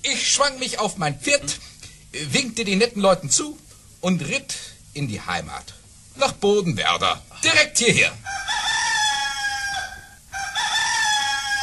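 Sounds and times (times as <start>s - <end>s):
speech: 0.3s - 8.4s
rooster crowing: 8.2s - 11.6s.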